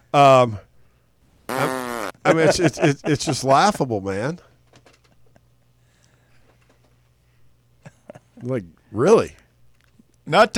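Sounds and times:
speech: 0:00.1 - 0:00.7, 0:02.3 - 0:04.5, 0:08.4 - 0:09.4, 0:10.3 - 0:10.5
buzzy fart sound effect: 0:01.5 - 0:02.2
laughter: 0:01.6 - 0:03.8.

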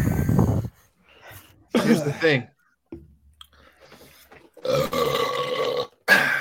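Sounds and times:
speech: 0:01.8 - 0:03.0, 0:04.6 - 0:05.2
loud drawn-out belch: 0:04.6 - 0:06.3.

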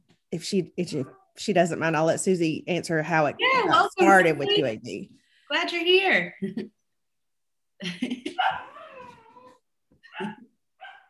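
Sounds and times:
speech: 0:00.3 - 0:06.8, 0:07.8 - 0:08.7
puppy yapping and whining: 0:08.4 - 0:11.0.

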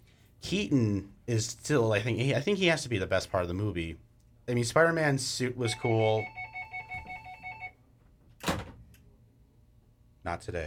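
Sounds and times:
low hum: 0:00.0 - 0:10.6
speech: 0:00.4 - 0:06.4, 0:10.3 - 0:10.6
telephone ringing with a trilling electronic bell: 0:05.7 - 0:07.8.

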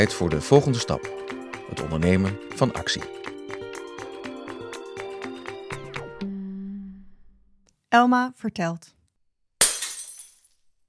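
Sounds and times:
speech: 0:00.0 - 0:03.2, 0:07.9 - 0:09.0
glass shards tinkling as they settle: 0:09.6 - 0:10.6
glass shattering: 0:09.6 - 0:10.6.

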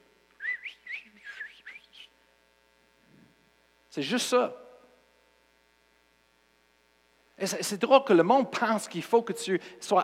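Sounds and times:
person whistling a whistled language: 0:00.4 - 0:02.1
speech: 0:04.0 - 0:04.6, 0:07.4 - 0:10.0.

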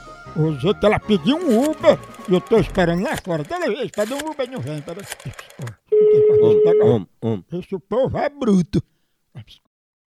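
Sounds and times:
speech: 0:00.4 - 0:09.6
telephone line tone while a call is being placed: 0:05.9 - 0:07.0.

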